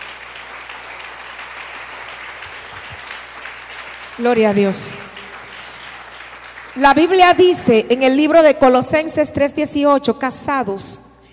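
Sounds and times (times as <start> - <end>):
congregation applauding at a church couples' gathering: 0.0 - 8.4
speech: 4.2 - 5.1, 6.8 - 11.0.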